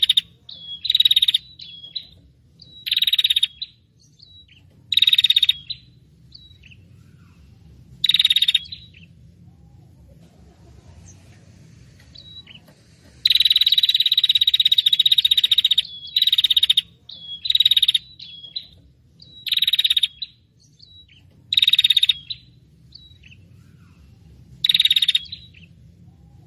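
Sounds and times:
prinia noisy call used as a trapping lure: 0.0s - 5.9s, 8.0s - 9.1s, 12.0s - 22.5s, 24.6s - 25.7s.

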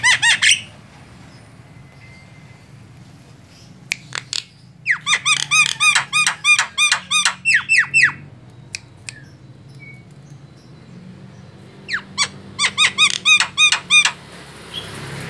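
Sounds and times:
Javan myna rasping tutor song: 0.0s - 15.0s.

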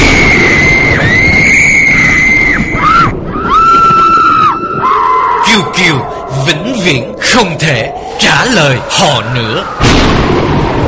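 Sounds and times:
wind: 0.0s - 10.8s
three girls screaming amid wind and rain: 0.3s - 5.5s
speech: 6.8s - 10.4s.

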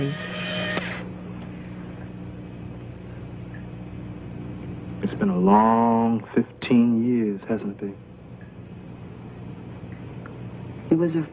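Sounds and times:
electric shaver buzzing: 0.0s - 1.0s
speech: 5.2s - 8.1s, 10.9s - 11.3s.

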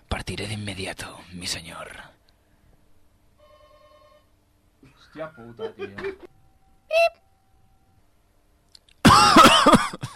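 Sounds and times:
speech: 0.3s - 2.2s, 4.9s - 6.3s
short harsh coughing fit: 5.6s - 6.3s, 9.0s - 10.1s.

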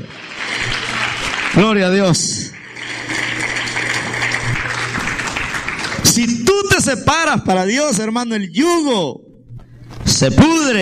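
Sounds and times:
church congregation applauding: 0.0s - 6.9s
speech: 1.6s - 2.5s, 6.2s - 9.3s, 10.2s - 10.8s.

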